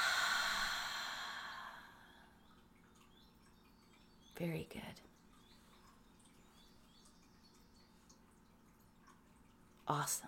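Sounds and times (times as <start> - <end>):
long soft airy exhale after slow deep breath in: 0.0 - 2.3
speech: 4.4 - 5.1, 9.9 - 10.2.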